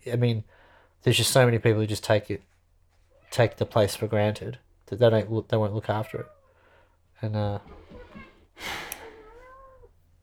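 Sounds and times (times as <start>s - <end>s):
speech: 0.0s - 2.5s, 3.3s - 6.4s, 7.2s - 8.9s
cat meowing after dinner: 5.9s - 6.5s, 7.6s - 10.0s.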